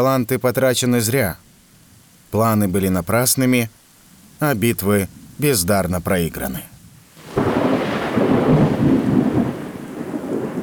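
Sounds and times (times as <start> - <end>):
speech: 0.0 - 1.5, 2.3 - 3.8, 4.4 - 6.7
heavy rain: 0.0 - 10.6
thunder rumbling: 7.2 - 10.6.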